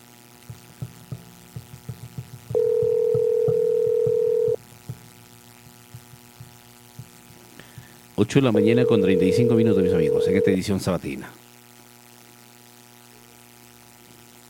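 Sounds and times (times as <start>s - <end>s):
telephone tone while a call is placed to a power company office: 2.5s - 4.6s, 8.6s - 10.6s
speech: 8.2s - 11.4s.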